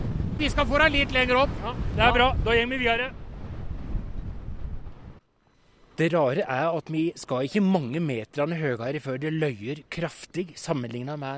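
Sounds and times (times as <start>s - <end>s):
strong wind on exposed mountain ridge buffeting the microphone: 0.0s - 5.2s
speech: 0.4s - 3.2s, 6.0s - 11.3s.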